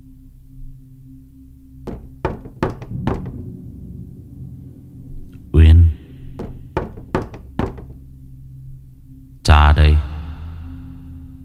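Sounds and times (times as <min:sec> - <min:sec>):
steady low hum: 0:00.8 - 0:09.4
heavy hollow knocking on a door at night: 0:01.9 - 0:03.4, 0:06.3 - 0:08.0.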